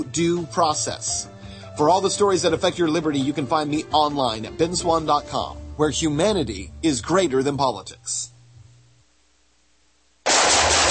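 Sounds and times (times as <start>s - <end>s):
speech: 0.1s - 8.3s
rapid gunfire from a shooting: 10.2s - 10.8s.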